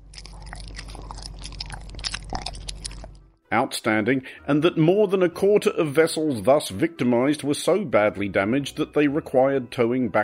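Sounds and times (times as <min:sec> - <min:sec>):
loud crunching and chewing: 0:00.0 - 0:03.4
speech: 0:03.5 - 0:10.2.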